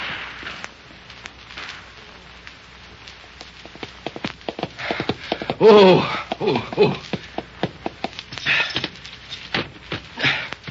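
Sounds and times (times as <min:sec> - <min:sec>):
steady noisy hiss: 0:00.0 - 0:10.6
galloping hooves of a mare ridden hard: 0:03.4 - 0:10.6
speech: 0:05.6 - 0:07.1.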